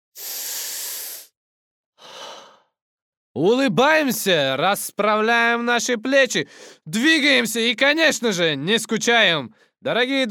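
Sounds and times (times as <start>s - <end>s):
deep breathing: 0.2s - 1.3s, 2.0s - 2.8s, 6.5s - 6.8s
speech: 3.4s - 10.2s.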